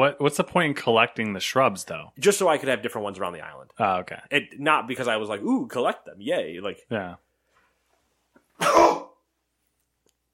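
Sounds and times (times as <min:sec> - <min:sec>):
speech: 0:00.0 - 0:07.2
person sneezing: 0:08.6 - 0:09.2.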